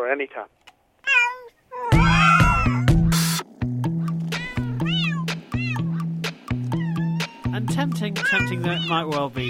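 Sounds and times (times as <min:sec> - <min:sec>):
speech: 0:00.0 - 0:00.6, 0:07.7 - 0:09.4
cat meowing: 0:01.0 - 0:03.1, 0:04.0 - 0:07.6, 0:08.2 - 0:09.4.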